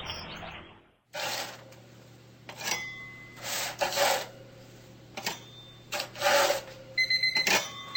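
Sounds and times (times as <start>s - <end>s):
metal spatula scraping a metal baking pan lifting ginger snaps in a kitchen: 1.2s - 1.7s, 2.5s - 4.4s, 5.2s - 6.8s.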